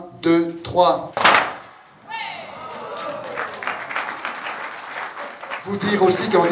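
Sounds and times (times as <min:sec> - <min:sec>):
speech: 0:00.2 - 0:01.2, 0:05.6 - 0:06.5
many scattered firecracker bangs and crackles: 0:01.2 - 0:01.9.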